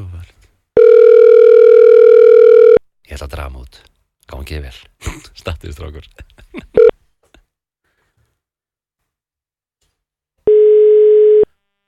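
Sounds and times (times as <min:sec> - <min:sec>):
telephone ringing tone: 0:00.8 - 0:02.8, 0:10.5 - 0:11.5
speech: 0:03.2 - 0:06.6.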